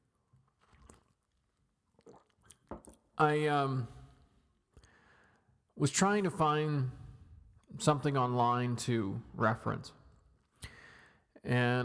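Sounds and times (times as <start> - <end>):
slurping and swallowing of hot tea: 0.5 - 3.1
speech: 3.2 - 4.0, 5.8 - 7.0, 7.8 - 10.0, 11.5 - 11.8.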